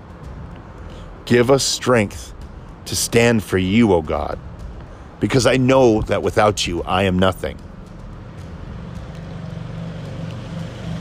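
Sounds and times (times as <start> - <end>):
cars driving past a backyard: 0.0 - 10.9
speech: 1.3 - 4.5, 5.2 - 7.7
motorcycles driving past a backyard: 7.6 - 10.9.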